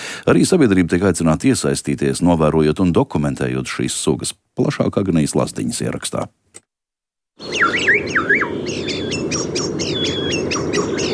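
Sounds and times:
steady noisy hiss: 0:00.0 - 0:06.4
speech: 0:00.3 - 0:06.5
common starling singing: 0:07.4 - 0:11.1.

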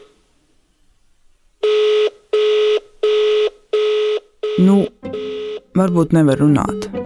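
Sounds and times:
electronic telephone ringing tone while a phone call is placed: 0:01.7 - 0:07.0
speech: 0:05.8 - 0:06.9.

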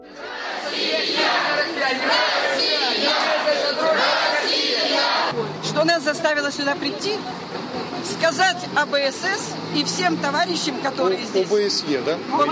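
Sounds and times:
large crowd shouting and chanting outdoors: 0:00.0 - 0:05.4
speech: 0:05.8 - 0:12.5.

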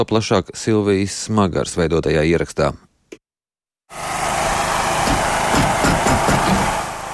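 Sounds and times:
speech: 0:00.0 - 0:02.9
engine of a specially equipped mobile care team car starting up and running: 0:03.9 - 0:07.1.

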